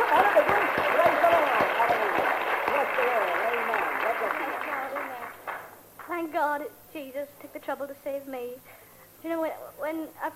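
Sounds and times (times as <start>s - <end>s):
group clapping in a steady rhythm: 0.0s - 6.2s
speech: 6.6s - 10.3s.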